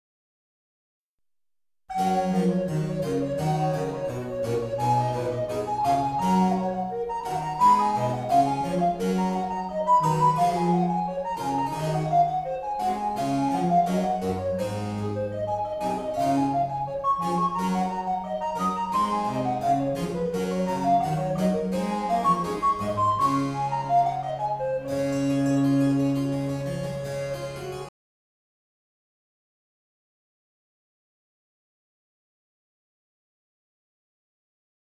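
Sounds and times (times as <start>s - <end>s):
recorder woodwind flute: 1.9s - 27.8s.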